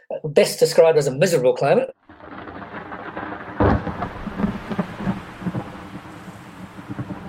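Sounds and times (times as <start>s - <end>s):
speech: 0.1s - 2.1s
loud thunder crack: 2.0s - 7.2s
gusty rumbling wind: 2.1s - 7.2s
steady rain hissing in stormy weather: 2.1s - 7.2s.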